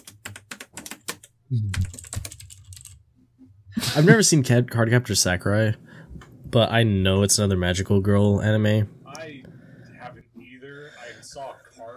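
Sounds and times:
computer keyboard typing: 0.0s - 3.0s
speech: 1.5s - 2.1s, 4.0s - 5.9s, 6.5s - 9.0s.

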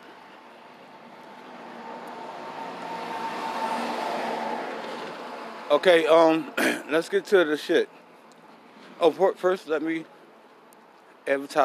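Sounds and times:
truck passing on the street: 0.0s - 9.2s
road noise from passing truck: 0.0s - 11.6s
speech: 5.7s - 8.0s, 9.0s - 10.2s, 11.2s - 11.6s.

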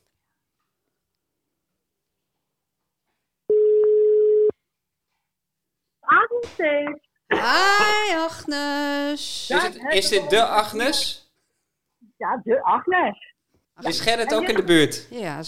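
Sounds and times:
telephone ringback tone while placing a call: 3.5s - 4.5s
speech: 6.4s - 11.2s, 12.2s - 15.4s.

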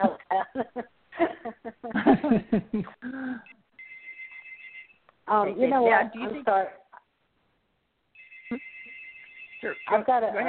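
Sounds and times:
speech: 2.3s - 3.0s, 5.4s - 6.8s, 9.9s - 10.4s
hotel room telephone ringing with shrill electronic tone: 3.8s - 5.0s, 8.2s - 10.4s.

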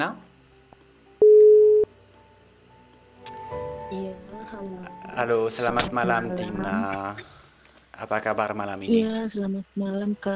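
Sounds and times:
speech: 0.0s - 0.2s, 3.9s - 7.4s, 8.0s - 10.3s
telephone connecting tone: 1.2s - 1.9s.

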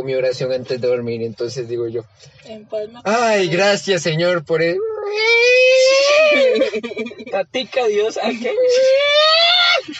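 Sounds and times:
speech: 0.0s - 9.9s
person imitating cats yowling at night: 4.8s - 6.6s, 8.7s - 9.8s
laughter: 6.1s - 7.4s.

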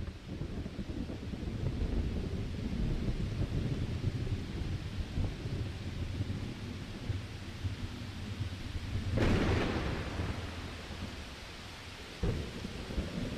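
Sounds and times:
steady rain: 0.0s - 13.3s
deep rolling thunder at the start of a storm: 0.3s - 11.4s, 12.2s - 13.3s
sharp thunder crack: 9.2s - 11.1s.

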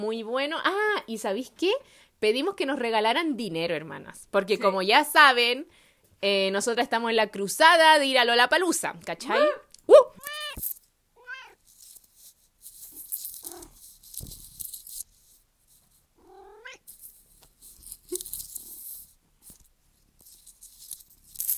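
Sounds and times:
speech: 0.0s - 10.3s
cat meowing: 10.2s - 10.6s, 11.2s - 11.6s, 16.2s - 16.9s
faint handling noises: 10.2s - 21.5s
rustling: 10.2s - 21.5s.

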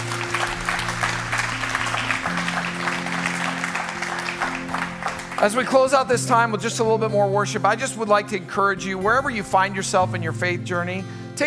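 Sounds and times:
audience applause at a worship service: 0.0s - 6.1s
speech: 5.4s - 11.4s.

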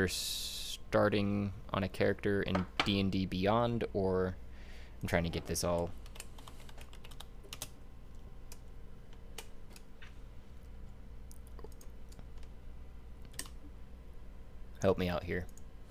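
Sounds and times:
speech: 0.0s - 4.4s, 5.0s - 6.0s, 14.8s - 15.6s
steady low hum: 0.0s - 15.8s
computer keyboard clicks: 6.0s - 7.7s, 11.3s - 12.5s, 13.2s - 13.6s.

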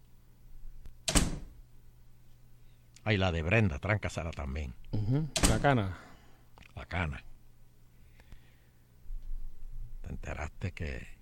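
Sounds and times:
door shutting and latching: 1.0s - 1.6s, 5.4s - 5.7s
speech: 3.1s - 6.1s, 6.8s - 7.3s, 10.1s - 11.2s.

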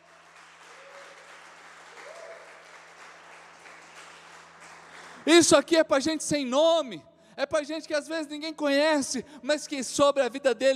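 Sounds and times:
audience applauding loudly: 0.0s - 5.5s
speech: 5.2s - 10.7s.

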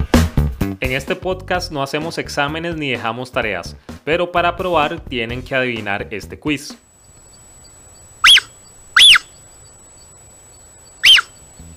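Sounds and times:
speech: 0.8s - 6.8s
mother Puma concolor giving bird-like chirps as a call: 7.1s - 11.7s.

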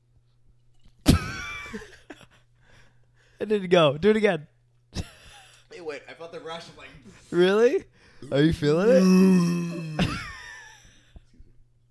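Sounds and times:
speech: 1.7s - 1.9s, 3.4s - 5.0s, 6.0s - 10.1s
throaty burp: 8.8s - 10.3s.

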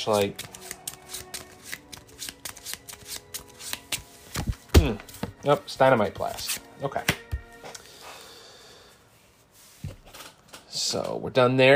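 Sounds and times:
speech: 0.0s - 0.5s, 4.8s - 7.2s, 10.9s - 11.7s
playing cards being handled and drawn from a hand: 0.0s - 7.9s.

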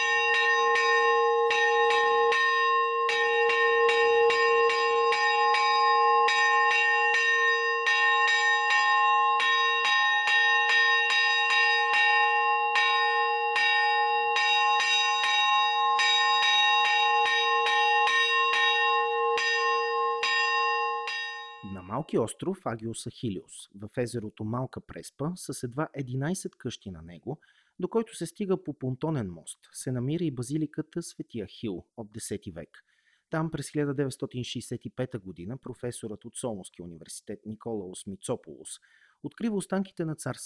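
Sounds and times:
morning church bells of many churches in the Prespa area ringing: 0.0s - 22.0s
speech: 22.1s - 40.4s.

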